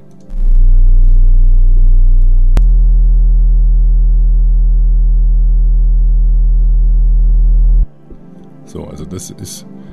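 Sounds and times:
very low 20-40 Hz sine tone hum: 0.0 - 7.9
speech: 8.7 - 9.8.

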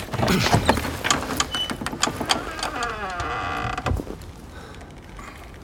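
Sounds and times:
door creaking: 0.1 - 4.2.

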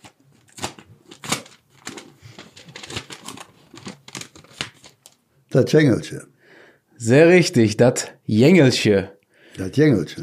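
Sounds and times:
paper slip rustling and crinkling pulled out of small envelope: 0.0 - 5.2
speech: 5.5 - 6.3, 7.0 - 10.2.

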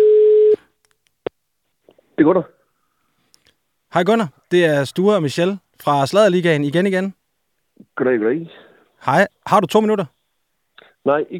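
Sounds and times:
electronic telephone ringing tone on an outgoing call: 0.0 - 0.6
speech: 2.2 - 2.6, 3.9 - 7.2, 8.0 - 10.2, 11.0 - 11.3.

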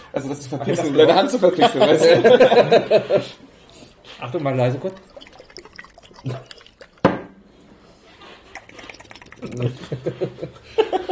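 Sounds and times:
speech: 0.1 - 3.5, 4.2 - 5.1, 9.6 - 11.0
laughter: 0.7 - 3.4, 9.4 - 11.1
faint liquid sputters: 3.6 - 10.0
sauce squirted from a bottle with a spray nozzle: 4.3 - 7.3, 8.4 - 9.8.

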